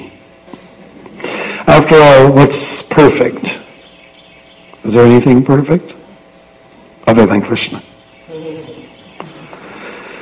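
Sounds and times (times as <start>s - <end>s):
outdoor hiss: 0.0s - 10.2s
speech: 1.8s - 3.6s, 4.9s - 6.0s, 7.1s - 7.9s
bird calling: 3.4s - 6.9s, 7.6s - 10.2s.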